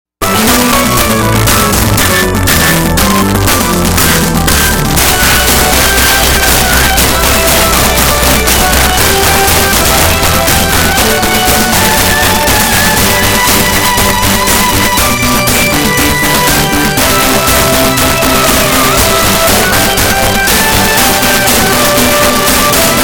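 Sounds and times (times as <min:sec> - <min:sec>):
regular pulse: 0:00.2 - 0:23.0.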